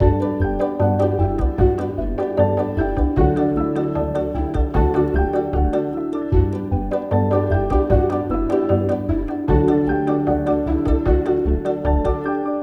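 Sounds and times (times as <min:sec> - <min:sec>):
chilled library music: 0:00.0 - 0:12.6.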